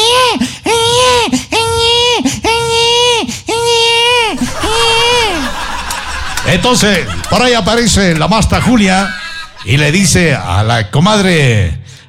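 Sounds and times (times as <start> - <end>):
person imitating baby crying: 0.0 - 5.5
laughter: 4.2 - 10.3
speech: 6.7 - 11.8.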